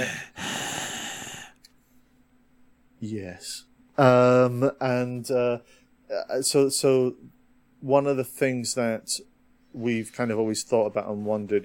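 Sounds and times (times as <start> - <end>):
person imitating heavy breathing: 0.0 - 1.6
speech: 3.0 - 11.6.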